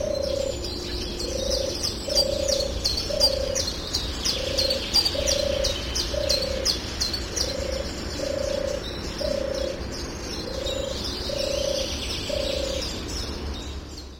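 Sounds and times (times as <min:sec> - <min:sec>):
European turtle dove giving short low rolling purrs: 0:00.0 - 0:12.9
small birds chirping and twittering: 0:00.0 - 0:14.1.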